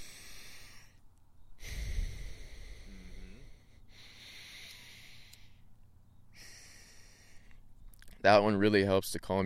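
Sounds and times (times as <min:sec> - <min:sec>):
person breathing slowly through the nose in alternate nostril breathing: 0:00.0 - 0:01.0, 0:01.6 - 0:05.6, 0:06.3 - 0:07.6
speech: 0:08.2 - 0:09.4.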